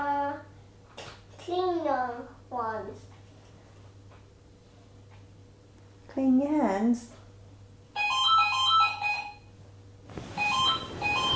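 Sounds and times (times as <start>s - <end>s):
speech: 1.5s - 3.1s, 6.2s - 7.2s
telephone ringtone with bright chiming electronic melody: 8.0s - 9.5s, 10.4s - 11.3s.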